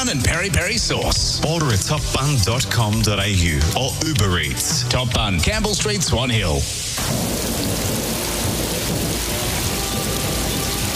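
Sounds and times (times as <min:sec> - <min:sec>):
speech: 0:00.0 - 0:07.7
steady heavy rain: 0:04.9 - 0:10.9
low rumbling thunder: 0:07.0 - 0:10.9.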